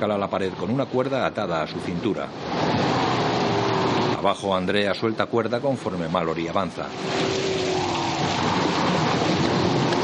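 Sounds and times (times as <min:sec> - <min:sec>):
speech: 0:00.0 - 0:03.0, 0:04.0 - 0:07.5, 0:08.2 - 0:09.1
rain pouring onto slippery stone on a cliff face: 0:01.8 - 0:04.5, 0:06.4 - 0:10.0.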